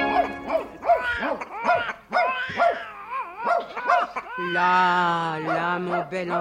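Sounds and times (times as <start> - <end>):
baby crying and whimpering: 0.1 - 5.0
speech: 6.0 - 6.3.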